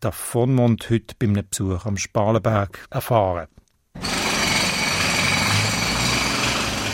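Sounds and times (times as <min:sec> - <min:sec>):
speech: 0:00.0 - 0:04.1
construction machinery rattling and grinding at street construction sites: 0:04.0 - 0:06.9.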